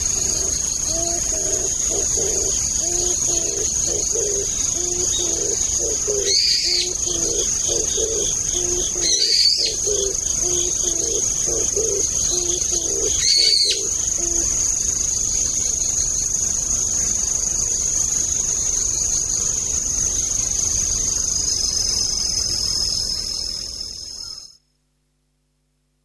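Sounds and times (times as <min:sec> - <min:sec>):
constant shrill insect drone: 0:00.0 - 0:24.6
brown-eared bulbul harsh squealing calls in autumn: 0:00.4 - 0:14.6.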